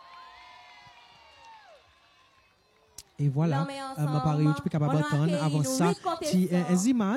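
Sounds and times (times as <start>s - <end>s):
audience cheering and whooping for contestants being introduced: 0.0s - 2.5s
speech: 3.2s - 7.1s.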